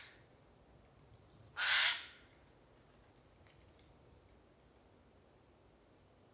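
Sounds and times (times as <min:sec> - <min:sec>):
Eurasian jay Garrulus glandarius calling: 0:01.6 - 0:02.1.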